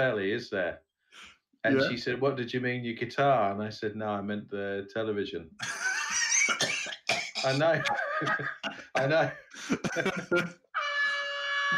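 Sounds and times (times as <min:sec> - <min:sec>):
speech: 0:00.0 - 0:05.8, 0:07.4 - 0:10.6
laughter: 0:01.7 - 0:02.0, 0:05.6 - 0:06.6, 0:07.4 - 0:10.5
air horn blast: 0:10.8 - 0:11.7.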